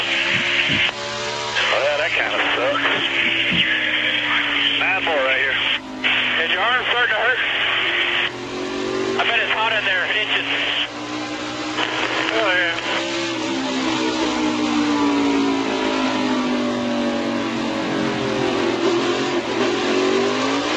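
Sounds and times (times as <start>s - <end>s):
faint voices of radio communication: 0.0s - 8.4s, 9.1s - 11.0s, 11.7s - 13.8s
race car engine revving heard from inside the car: 0.0s - 20.7s.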